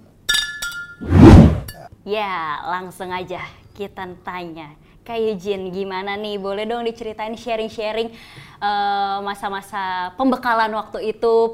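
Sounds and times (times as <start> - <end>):
glasses clinking together in a toast: 0.3 - 1.0
speech: 2.0 - 11.5.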